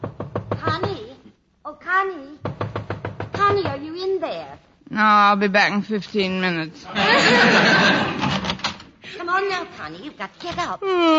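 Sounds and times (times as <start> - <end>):
woman knocking on a bedroom door: 0.0 - 1.1, 2.4 - 4.1
speech: 1.7 - 2.5, 3.5 - 8.3, 9.1 - 11.1
laughter: 6.9 - 8.5.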